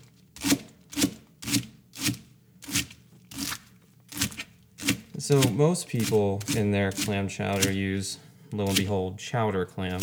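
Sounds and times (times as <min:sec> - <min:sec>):
knife chopping leeks on a cutting board: 0:00.4 - 0:07.8, 0:08.6 - 0:08.9
speech: 0:05.3 - 0:10.0.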